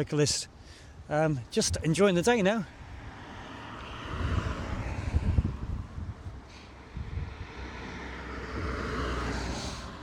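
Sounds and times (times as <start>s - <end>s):
speech: 0.0s - 2.8s
car passing along a country road: 2.7s - 10.0s
gusty wind buffeting the microphone outdoors: 2.7s - 10.0s.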